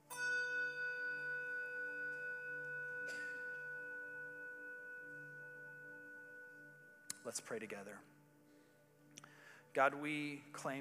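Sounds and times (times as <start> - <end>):
large bell tolling in memorial honor: 0.0 - 8.2
speech: 7.2 - 8.2, 9.8 - 10.7.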